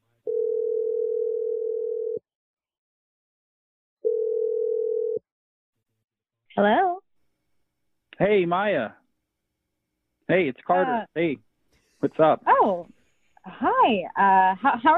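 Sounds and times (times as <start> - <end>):
long steady telephone ringing tones: 0.3 - 2.2, 4.0 - 5.2
speech: 8.2 - 9.0, 10.3 - 14.9.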